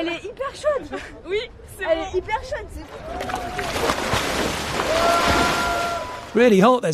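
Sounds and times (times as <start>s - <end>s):
speech: 0.0s - 5.3s, 6.4s - 6.9s
steady watery wash of a river: 0.6s - 6.9s
swimmers diving and splashing in a river: 2.8s - 6.6s.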